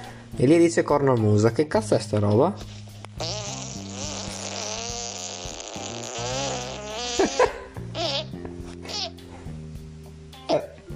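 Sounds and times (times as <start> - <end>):
speech: 0.4 - 2.8
fly buzzing against the microphone: 3.2 - 9.2.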